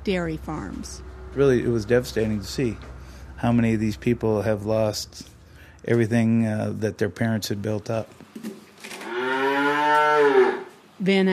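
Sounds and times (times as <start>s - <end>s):
speech: 0.0s - 8.5s, 11.0s - 11.3s
calves mooing at feeding time on a dairy farm: 9.0s - 10.8s.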